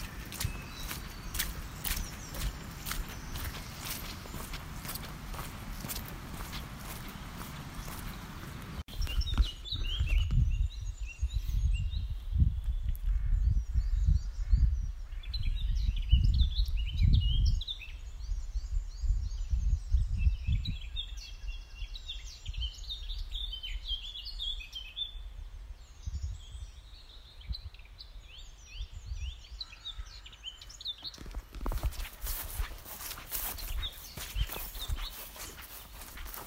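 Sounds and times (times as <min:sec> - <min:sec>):
footsteps crunching: 0:00.0 - 0:10.2, 0:31.0 - 0:36.4
dawn chorus of many birds chirping and trilling: 0:00.0 - 0:36.4.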